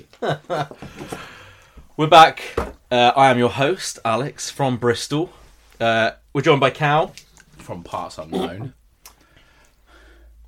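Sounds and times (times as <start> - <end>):
speech: 0.0 - 1.2, 2.0 - 8.8
person clearing throat close to the microphone: 8.3 - 8.8.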